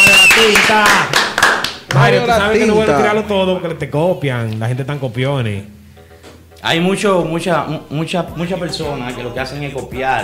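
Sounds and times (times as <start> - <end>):
applause hand claps in a studio booth: 0.0 - 2.2
speech: 0.4 - 1.2, 1.9 - 5.8, 6.6 - 10.2.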